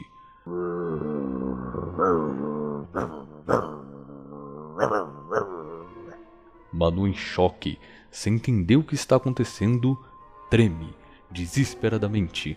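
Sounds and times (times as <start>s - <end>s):
dog growling: 0.5s - 6.2s
dog barking: 3.0s - 3.8s, 4.8s - 5.6s
speech: 6.8s - 12.5s.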